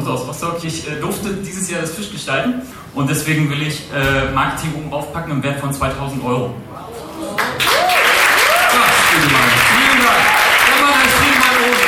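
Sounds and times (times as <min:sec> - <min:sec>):
speech: 0:00.1 - 0:06.8
voices calling out and cheering: 0:06.9 - 0:11.8
crowd applause: 0:07.4 - 0:11.8.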